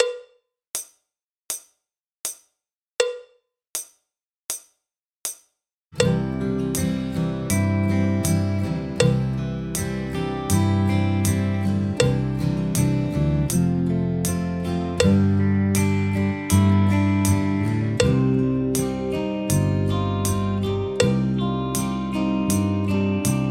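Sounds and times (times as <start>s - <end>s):
drum kit: 6.0s - 23.4s.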